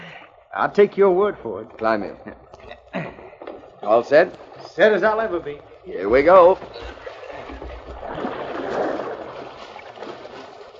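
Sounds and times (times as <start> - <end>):
speech: 0.6 - 2.5, 3.8 - 7.0
rushing river water splashing around a canoe: 2.9 - 10.7.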